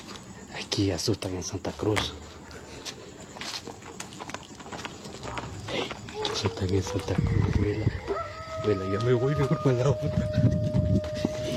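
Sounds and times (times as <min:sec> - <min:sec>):
steady hiss: 0:00.0 - 0:06.9
speech: 0:00.8 - 0:02.4, 0:06.5 - 0:10.8
horse hooves clip-clopping: 0:02.8 - 0:11.5.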